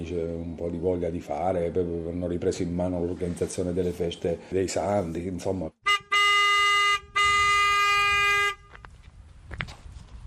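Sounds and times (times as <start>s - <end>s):
speech: 0.0s - 5.8s
long loud car horn honks of a traveling vendor's van: 5.8s - 8.8s.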